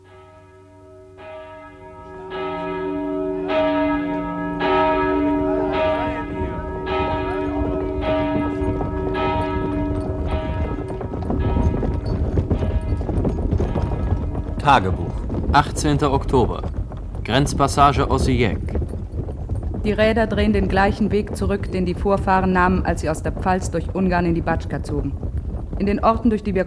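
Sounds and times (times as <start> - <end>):
church bells ringing: 0.0 - 15.0
rough noise: 1.1 - 22.2
horse hooves clip-clopping: 1.2 - 26.6
speech: 14.7 - 16.7, 17.3 - 18.8, 19.8 - 25.2, 25.8 - 26.6.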